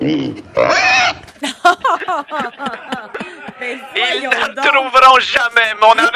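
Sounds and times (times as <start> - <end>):
pig squealing and grunting: 0.0 - 1.3
laughter: 1.3 - 4.9, 5.8 - 6.1
speech: 3.6 - 6.1.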